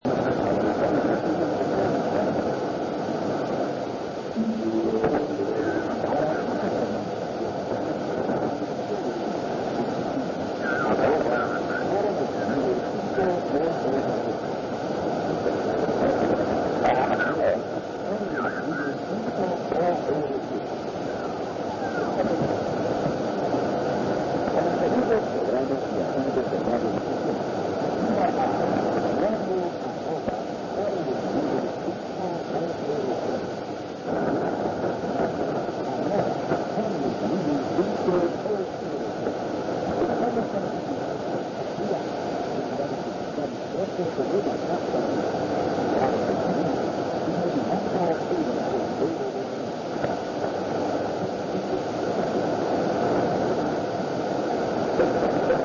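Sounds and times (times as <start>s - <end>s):
shortwave radio signal on 5054.60 kHz: 0.0s - 55.6s.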